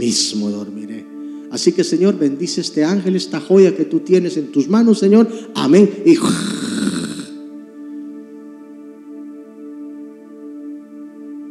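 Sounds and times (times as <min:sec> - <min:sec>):
speech: 0:00.0 - 0:07.0
voice imitating loud snoring: 0:06.2 - 0:07.4.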